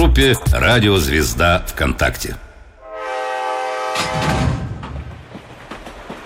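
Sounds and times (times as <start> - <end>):
speech: 0.2 - 2.5
train horn blaring: 2.8 - 4.7
train wheels clacking over rail joints: 4.0 - 6.2.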